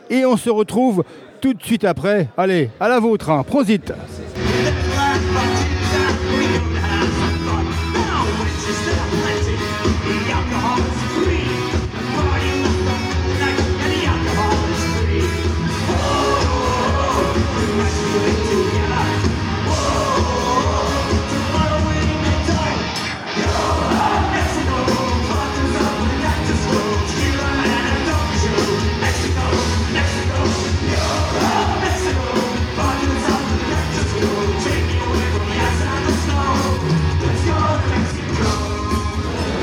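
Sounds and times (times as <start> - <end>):
speech: 0.1 - 4.2
crowd yelling and cheering in a concert hall at a rock concert: 4.4 - 39.6
pounding live rock music: 4.4 - 39.6.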